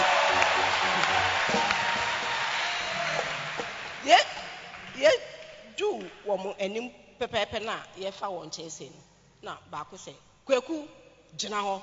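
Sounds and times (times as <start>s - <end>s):
audience clapping: 0.0s - 5.6s
speech: 6.4s - 11.8s.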